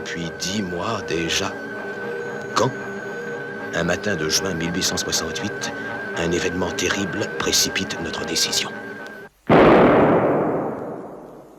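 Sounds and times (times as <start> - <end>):
speech: 0.1 - 1.8, 2.6 - 2.9, 3.7 - 8.9
cannon shot from a frigate: 9.5 - 11.5.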